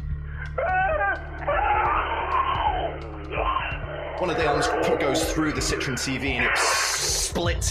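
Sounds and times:
speech: 0.6 - 1.6, 4.2 - 7.6
monstrous creature screaming: 0.6 - 7.3
steady low hum: 1.2 - 6.6.

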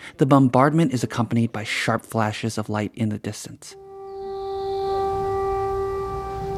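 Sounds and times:
speech: 0.2 - 3.8
air raid siren wailing outside a bomb shelter in Kramatorsk during wartime: 3.8 - 6.5.

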